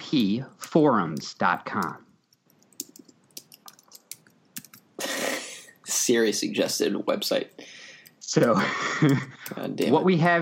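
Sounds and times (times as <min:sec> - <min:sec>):
speech: 0:00.1 - 0:02.1, 0:06.1 - 0:07.7, 0:08.3 - 0:10.4
typing a website address on a computer keyboard: 0:01.8 - 0:04.9, 0:08.0 - 0:10.0.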